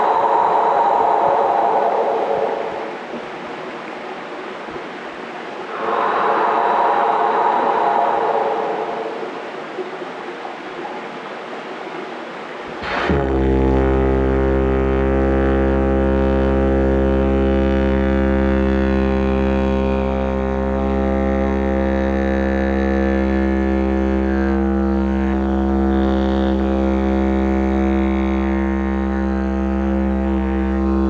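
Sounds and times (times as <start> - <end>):
didgeridoo deep buzzing drone with layered overtones: 0.0 - 3.2, 5.7 - 10.6, 12.8 - 31.0
soft airy swells: 0.0 - 12.8.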